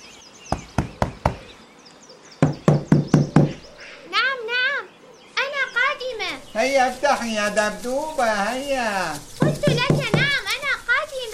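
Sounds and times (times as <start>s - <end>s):
faint bird chirps: 0.0s - 7.4s
knocking on a door: 0.5s - 1.5s, 2.4s - 3.6s, 9.5s - 10.4s
speech: 6.6s - 10.0s.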